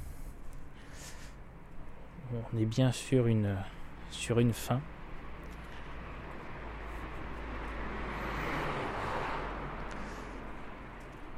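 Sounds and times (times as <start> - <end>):
speech: 2.3 - 5.0
cars passing on a street: 3.6 - 11.3.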